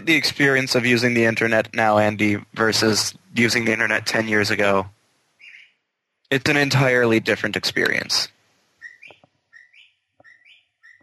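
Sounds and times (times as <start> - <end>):
speech: 0.0 - 5.0, 6.3 - 8.4
recorded birdsong from a bird clock chiming the hour: 5.4 - 5.8, 8.8 - 11.0.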